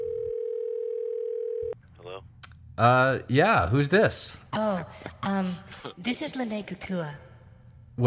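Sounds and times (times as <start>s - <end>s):
steady loud telephone call tone: 0.0s - 1.8s
speech: 2.1s - 7.3s.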